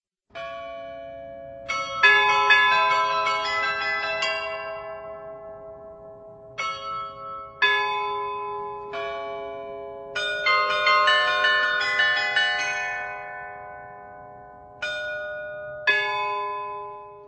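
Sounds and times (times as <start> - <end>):
church carillon bells in a baroque church bell tower in Prague: 0.4 - 17.2.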